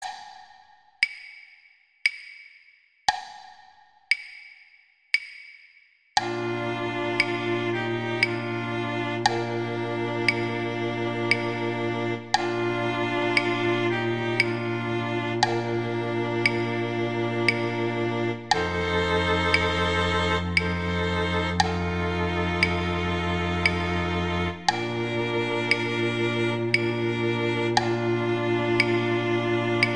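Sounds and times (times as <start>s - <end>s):
viola: 6.2s - 29.9s.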